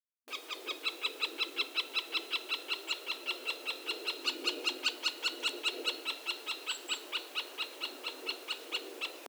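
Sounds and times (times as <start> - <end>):
middle spotted woodpecker Dendrocoptes medius calls: 0.3 - 9.2.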